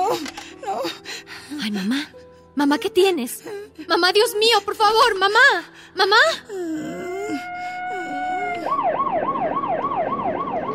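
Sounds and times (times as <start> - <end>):
speech: 0.1 - 0.4, 1.6 - 7.4
ambulance siren: 7.2 - 10.7.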